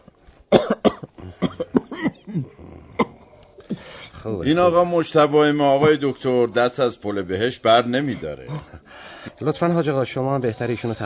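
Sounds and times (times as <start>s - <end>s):
patient coughing during checkup: 0.5s - 3.9s
speech: 4.2s - 8.8s, 9.4s - 11.0s.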